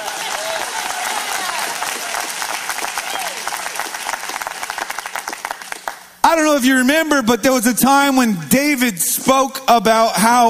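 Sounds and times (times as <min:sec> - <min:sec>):
large audience applause: 0:00.0 - 0:06.0
speech: 0:06.3 - 0:10.4.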